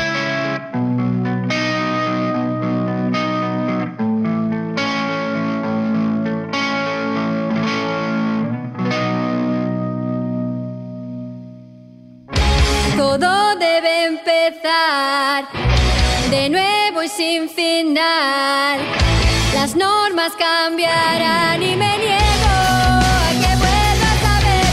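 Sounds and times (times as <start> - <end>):
heavily distorted chorus-washed electric guitars holding steady chords: 0.0 - 13.5, 15.5 - 16.9, 18.7 - 24.7
young band of kids playing a loud rock song: 12.3 - 13.1, 15.6 - 16.4, 18.8 - 19.8, 20.9 - 24.7
speech: 13.6 - 23.4.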